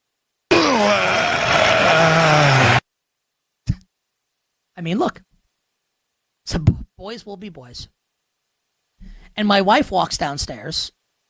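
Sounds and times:
person imitating a groan while riding an exercise bike: 0:00.5 - 0:02.8
short grunt: 0:00.5 - 0:02.8
speech: 0:04.8 - 0:05.2, 0:06.5 - 0:08.0, 0:09.4 - 0:11.0.

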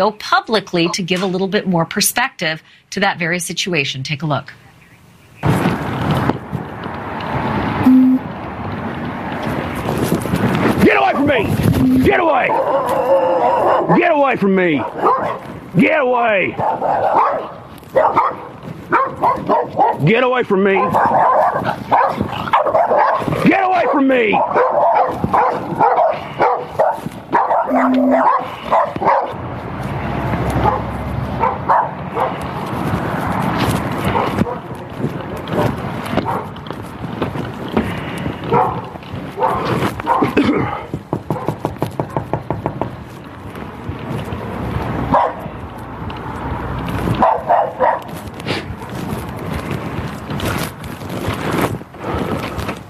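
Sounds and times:
speech: 0:00.0 - 0:04.7, 0:11.1 - 0:26.8, 0:27.7 - 0:29.4
wind buffeting the microphone: 0:05.3 - 0:41.2, 0:41.8 - 0:52.8
several dogs barking aggressively: 0:10.7 - 0:42.9, 0:44.4 - 0:50.6.

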